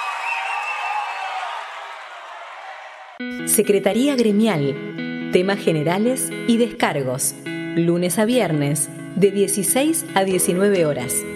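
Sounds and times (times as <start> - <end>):
audience applause: 0.0 - 3.2
speech: 3.2 - 11.3.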